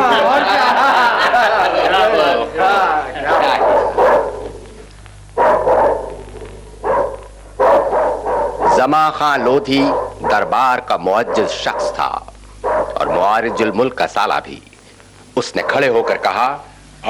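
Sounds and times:
laughter: 0.0s - 4.0s
low steady hum: 0.0s - 17.0s
dog barking excitedly: 3.3s - 4.5s, 5.4s - 6.2s, 6.8s - 9.0s, 9.7s - 13.8s, 15.6s - 16.4s
speech: 8.8s - 12.2s, 13.2s - 14.7s, 15.4s - 17.0s.

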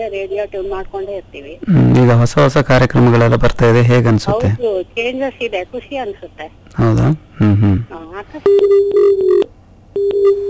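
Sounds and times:
speech: 0.0s - 9.4s
telephone disconnected tone on a cut-off call: 8.4s - 10.4s.

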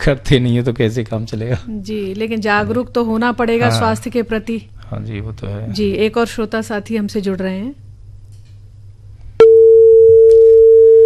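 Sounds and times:
speech: 0.0s - 7.8s
telephone busy tone from a failed call: 9.4s - 11.0s.

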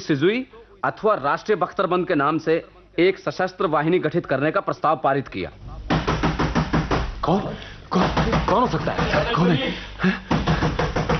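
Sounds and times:
speech: 0.0s - 5.7s, 7.2s - 10.4s
firm knocks on a door: 5.9s - 7.2s, 8.0s - 9.3s, 10.3s - 11.1s.

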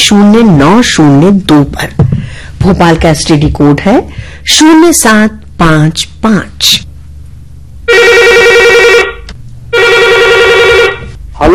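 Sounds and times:
speech: 0.1s - 6.9s, 7.9s - 8.5s
electronic telephone ring for an incoming call to a radio phone-in: 7.9s - 11.1s.

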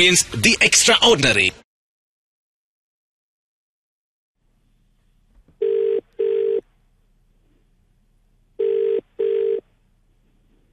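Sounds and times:
speech: 0.0s - 1.6s
ringback tone of an outgoing telephone call: 5.6s - 6.6s, 8.6s - 9.6s.

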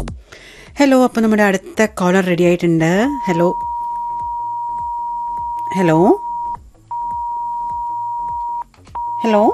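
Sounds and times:
speech: 0.8s - 3.7s, 5.7s - 6.3s, 9.2s - 9.5s
phone call disconnecting tone: 3.1s - 9.5s.

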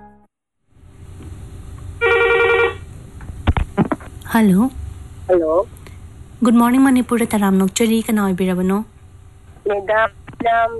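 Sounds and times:
low rumbling hum: 0.0s - 2.0s, 2.7s - 10.7s
warbling electronic studio telephone ring during a live phone-in program in Manipur: 2.0s - 2.8s
speech: 4.3s - 5.8s, 6.4s - 8.9s, 9.7s - 10.7s.

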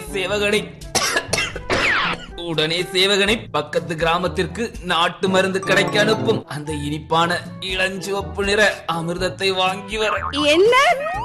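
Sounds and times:
speech: 0.1s - 0.8s, 2.1s - 11.2s
king coughing with a parched throat: 1.0s - 2.1s.

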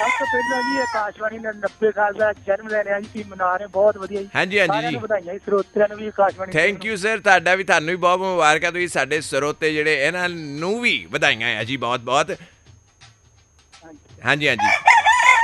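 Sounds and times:
rooster crowing: 0.0s - 1.1s, 14.6s - 15.4s
people talking: 0.0s - 12.4s, 13.8s - 14.8s.

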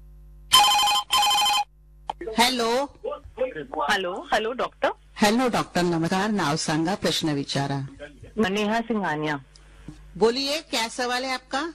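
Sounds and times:
telephone ringing: 0.5s - 1.7s
speech: 2.2s - 9.5s, 10.2s - 11.7s.

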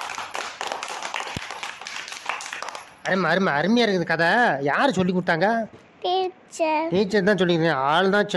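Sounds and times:
group of people clapping after a story: 0.0s - 3.4s
speech: 3.1s - 8.3s.

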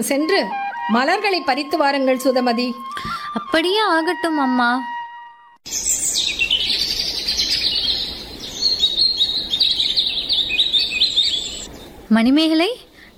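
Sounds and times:
speech: 0.0s - 5.0s, 5.7s - 6.0s, 12.1s - 13.1s
birds chirping and twittering in a flower garden: 5.7s - 13.1s.

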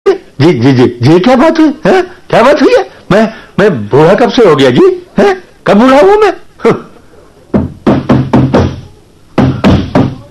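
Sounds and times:
speech: 0.4s - 6.9s
knocking on a door: 7.6s - 8.8s, 9.4s - 10.2s.

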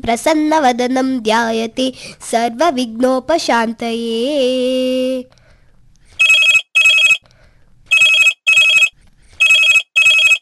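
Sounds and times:
speech: 0.0s - 5.4s
telephone ringing at home in double rings: 6.2s - 7.2s, 7.9s - 10.4s.

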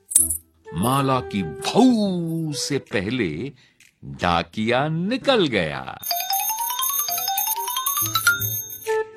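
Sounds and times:
silver anklet bells jingling: 0.0s - 1.0s, 6.0s - 9.0s
speech: 0.2s - 6.2s, 8.0s - 8.6s.

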